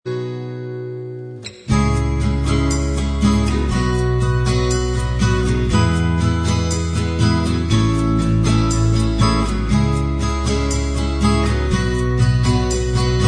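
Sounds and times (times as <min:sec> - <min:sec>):
acoustic instrumental music: 0:00.0 - 0:13.2.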